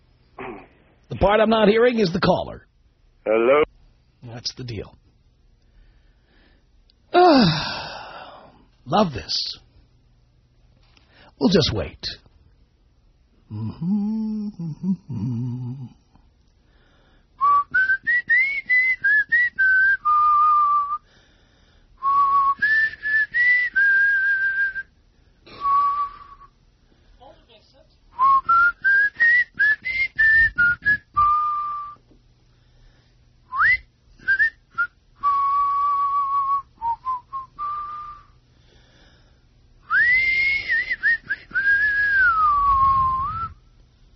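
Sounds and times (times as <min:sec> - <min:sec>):
speech: 0:01.1 - 0:05.0, 0:07.2 - 0:07.8, 0:08.8 - 0:09.6, 0:11.4 - 0:12.2, 0:13.5 - 0:16.0
brief low vocal sound: 0:07.1 - 0:08.6, 0:13.4 - 0:16.2, 0:42.2 - 0:43.6
person whistling short melodic phrases: 0:17.4 - 0:21.0, 0:22.0 - 0:24.9, 0:25.5 - 0:26.5, 0:28.2 - 0:32.0, 0:33.5 - 0:38.4, 0:39.9 - 0:43.6.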